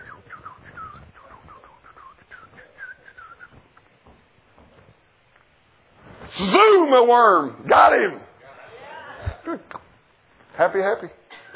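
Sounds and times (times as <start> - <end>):
person whistling in imitation of a bird's song: 0.0 - 3.6
speech: 6.4 - 8.2, 10.6 - 11.2.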